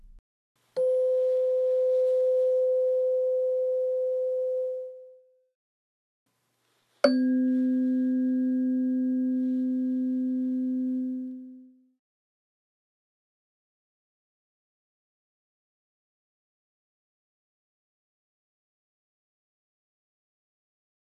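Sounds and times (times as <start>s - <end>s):
struck tuning fork ringing tone: 0.8s - 5.2s, 7.0s - 11.8s.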